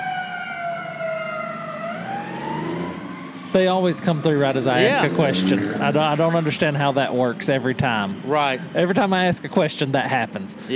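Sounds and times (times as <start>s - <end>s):
passing ambulance siren wailing: 0.0s - 6.4s
low rumble of engine and traffic: 0.0s - 10.7s
speech: 3.5s - 10.7s.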